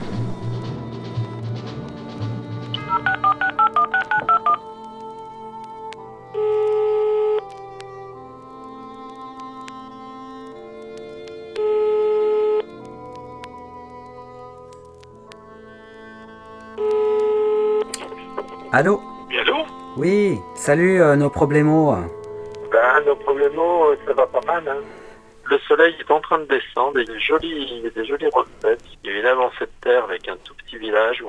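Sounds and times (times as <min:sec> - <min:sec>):
long steady telephone ringing tones: 0:02.8 - 0:04.6, 0:06.3 - 0:07.4, 0:11.6 - 0:12.7, 0:16.8 - 0:19.8
rapid short telephone dialing beeps: 0:02.8 - 0:04.6
soft sounds: 0:02.8 - 0:31.2
speech: 0:18.8 - 0:22.2, 0:23.1 - 0:31.2.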